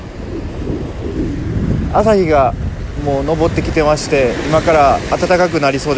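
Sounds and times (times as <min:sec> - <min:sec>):
gusty wind buffeting the microphone: 0:00.0 - 0:05.9
surf at a harbour swimming beach on Hachijo-jima Japan on a sunny morning: 0:00.0 - 0:05.9
speech: 0:01.9 - 0:05.9.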